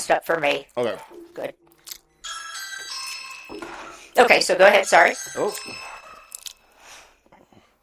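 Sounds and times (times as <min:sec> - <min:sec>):
speech: 0:00.1 - 0:01.6, 0:03.5 - 0:06.0
doorbell chiming: 0:02.2 - 0:06.7.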